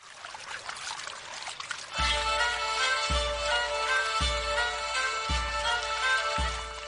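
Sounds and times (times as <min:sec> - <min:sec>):
water trickling and splashing in a shallow garden stream: 0:00.0 - 0:06.8
tonal music with a slow regular low drumbeat: 0:02.0 - 0:06.8.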